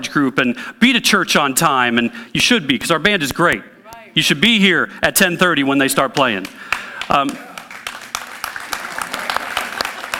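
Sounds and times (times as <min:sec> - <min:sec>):
speech: 0:00.0 - 0:07.5
crowd applause with many hands clapping: 0:06.0 - 0:10.1.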